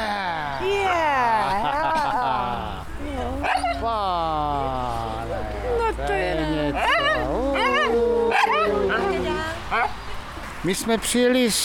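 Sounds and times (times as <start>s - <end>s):
laughter: 0.0s - 9.5s
small dog barking and yipping: 3.4s - 3.9s, 6.7s - 10.0s
speech: 10.6s - 11.6s.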